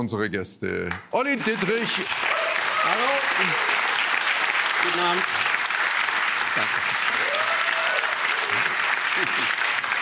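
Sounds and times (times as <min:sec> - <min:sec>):
speech: 0:00.0 - 0:03.8, 0:04.8 - 0:05.4, 0:06.6 - 0:06.9
studio audience applause: 0:01.2 - 0:10.0.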